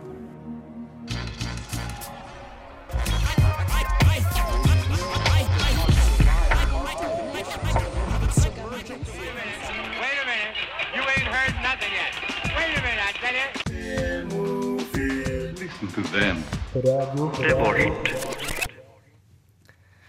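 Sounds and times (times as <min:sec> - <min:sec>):
steady vocals: 0:02.0 - 0:19.2
song with driving bass-heavy beat: 0:02.9 - 0:09.4, 0:11.2 - 0:18.1
speech: 0:16.1 - 0:18.2.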